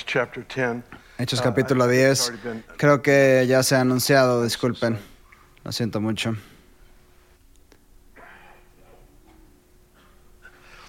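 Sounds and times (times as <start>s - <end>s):
faint steady electrical hum: 0.0s - 10.8s
speech: 0.1s - 6.5s
person coughing in short rough bursts: 8.2s - 9.0s.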